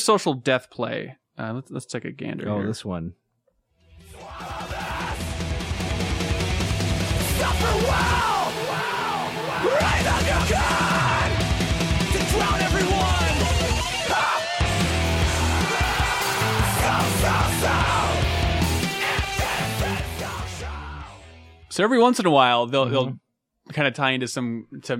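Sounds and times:
speech: 0:00.0 - 0:03.2, 0:21.8 - 0:24.9
loud dense distorted guitars in a hardcore song: 0:03.8 - 0:21.7
harsh screamed vocals in a hardcore song: 0:04.1 - 0:05.6, 0:07.0 - 0:21.2
pounding drums in a hardcore song: 0:04.2 - 0:20.3.

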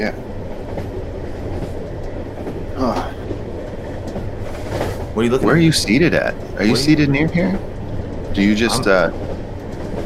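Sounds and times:
speech: 0:00.0 - 0:00.3, 0:05.2 - 0:07.7, 0:08.4 - 0:09.2
train rolling on tracks: 0:00.0 - 0:10.0.

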